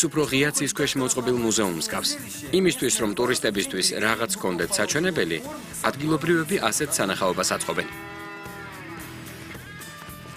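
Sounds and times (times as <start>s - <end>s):
speech: 0.0s - 8.2s
local bull with huge horns mooing: 6.7s - 10.0s.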